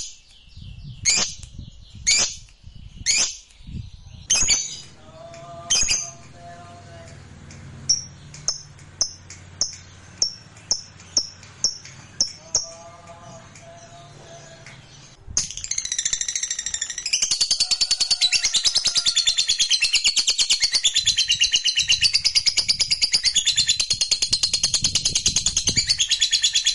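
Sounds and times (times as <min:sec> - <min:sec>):
fighter-type lovebird chirping and chattering: 0:00.0 - 0:26.7
low hum: 0:03.6 - 0:17.1.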